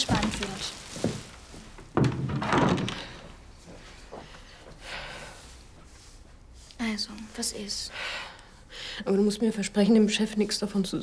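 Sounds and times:
shuffling and rustling movement: 0.0 - 7.8
door pushed shut with a dull thud: 2.0 - 3.2
speech: 7.4 - 8.2, 9.0 - 11.0.

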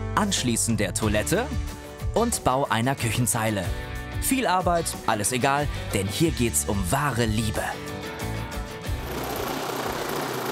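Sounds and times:
speech: 0.2 - 7.9
six-cylinder engine starting and rumbling: 8.9 - 10.5.

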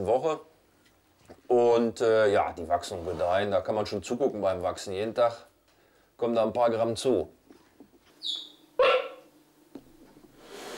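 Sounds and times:
speech: 0.0 - 0.5, 1.5 - 5.5, 6.2 - 7.4, 8.2 - 8.5
soft hiss: 0.0 - 10.7
cheetah cubs chirping: 8.2 - 9.3.

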